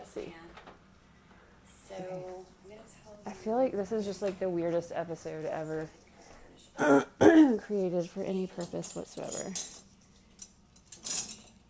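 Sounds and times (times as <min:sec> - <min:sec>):
speech: 0:00.2 - 0:00.6, 0:01.9 - 0:06.0, 0:06.8 - 0:09.7
cutlery clinking while emptying a dishwasher: 0:08.4 - 0:11.6.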